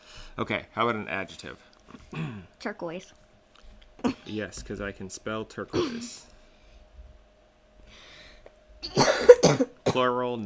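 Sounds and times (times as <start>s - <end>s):
speech: 0.4s - 3.2s, 4.0s - 6.3s, 8.8s - 10.4s
harsh raspy cough: 2.1s - 2.4s, 5.7s - 6.2s, 8.8s - 10.1s.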